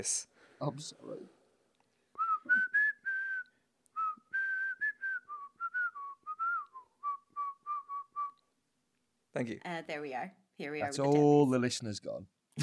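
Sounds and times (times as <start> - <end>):
speech: 0.0 - 1.4, 9.3 - 12.6
person whistling a bouncy melody: 2.2 - 8.4.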